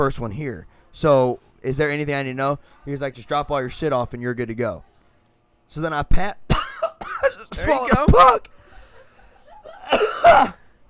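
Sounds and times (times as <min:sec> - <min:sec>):
speech: 0:00.0 - 0:04.9, 0:05.7 - 0:06.4, 0:07.0 - 0:08.6, 0:09.9 - 0:10.6
person coughing after swallowing a gnat: 0:06.5 - 0:08.4, 0:09.7 - 0:10.7.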